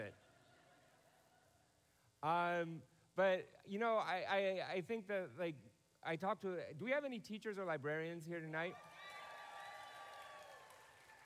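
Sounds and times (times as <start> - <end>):
speech: 0.0 - 0.2, 2.2 - 9.0
small audience clapping: 8.8 - 11.2.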